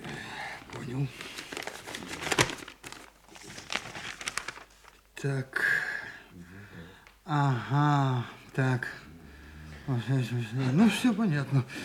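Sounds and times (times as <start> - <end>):
paper crinkling and rustling as it is handled: 0.6 - 5.1
speech: 0.9 - 1.4, 5.2 - 5.8, 7.3 - 9.0, 9.9 - 11.8
paper packet holding instructions torn open: 1.2 - 5.0.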